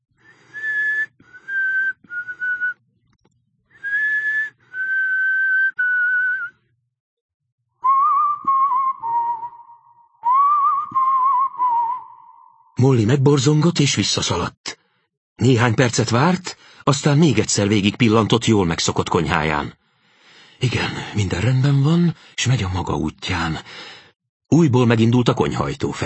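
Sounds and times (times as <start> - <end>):
person whistling a slow melody: 0.2 - 2.8, 3.8 - 6.6, 7.8 - 12.8
speech: 12.8 - 14.8, 15.4 - 19.8, 20.6 - 26.0.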